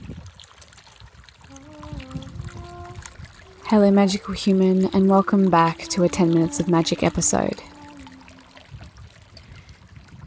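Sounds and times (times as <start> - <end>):
water trickling and lapping at a lake's edge: 0.0 - 10.2
speech: 3.7 - 7.7.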